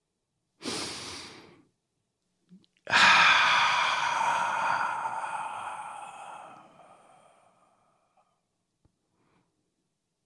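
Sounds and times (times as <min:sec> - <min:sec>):
deep breath: 0:00.6 - 0:01.7, 0:02.9 - 0:08.4.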